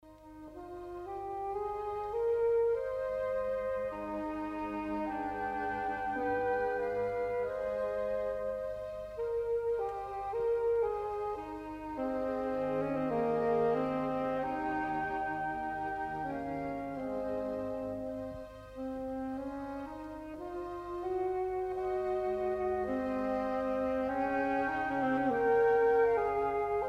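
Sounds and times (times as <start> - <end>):
saxophone solo: 0.0 - 26.8.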